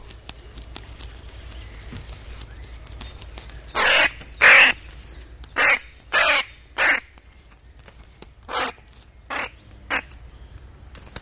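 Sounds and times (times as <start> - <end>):
faint songbirds chirping: 0.0 - 11.2
crow cawing: 3.8 - 4.8, 5.6 - 7.1, 8.5 - 10.1.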